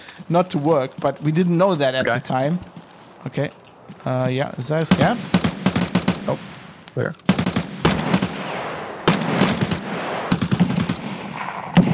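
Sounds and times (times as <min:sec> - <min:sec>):
speech: 0:00.3 - 0:05.4, 0:06.3 - 0:07.2
video game battle noise: 0:04.0 - 0:11.9
machine gun fire in a video game gunfight: 0:04.9 - 0:11.9.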